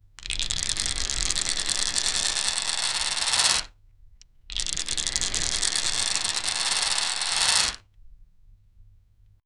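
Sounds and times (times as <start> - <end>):
roulette rolling: 0.2 - 3.7, 4.5 - 7.8.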